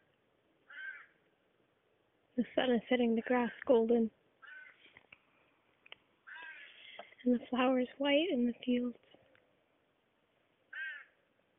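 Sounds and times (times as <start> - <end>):
crow cawing outdoors near fields: 0.7 - 1.2, 4.4 - 4.8, 6.2 - 7.0, 10.7 - 11.2
speech: 2.4 - 4.2, 7.3 - 9.2.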